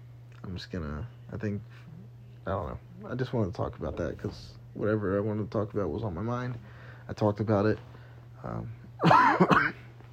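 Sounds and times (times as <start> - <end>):
speech: 0.5 - 9.7
cough triggered by a tickle in the throat: 9.0 - 10.0.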